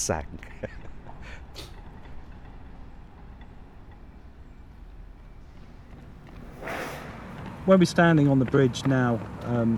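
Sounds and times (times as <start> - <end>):
speech: 0.0 - 0.8, 7.7 - 9.7
train rumbling past: 1.9 - 9.4
hissing bursts: 6.2 - 7.7.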